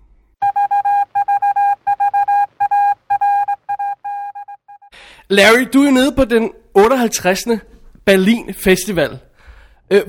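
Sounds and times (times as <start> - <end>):
loud mid-pitched electronic beeps in short bursts: 0.4 - 4.9
speech: 5.3 - 9.3, 9.9 - 10.0.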